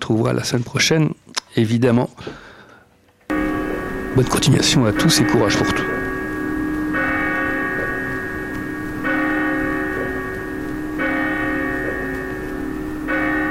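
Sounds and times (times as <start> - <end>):
speech: 0.1 - 2.4, 4.2 - 6.0
church bell tolling: 3.3 - 13.4.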